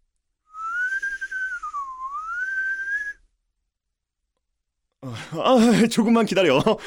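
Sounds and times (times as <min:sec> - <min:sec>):
person whistling a long sliding note: 0:00.5 - 0:03.2
speech: 0:05.0 - 0:06.8.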